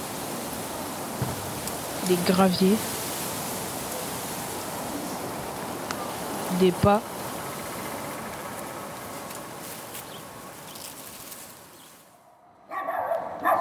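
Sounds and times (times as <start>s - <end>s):
outdoor noise: 0.0s - 13.5s
speech: 1.2s - 3.0s, 6.6s - 7.1s
dog barking: 12.7s - 13.5s.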